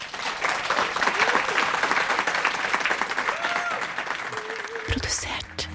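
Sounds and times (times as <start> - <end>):
audience applause: 0.0 - 5.5
faint crowd voices and whoops: 3.3 - 4.9
speech: 5.1 - 5.5.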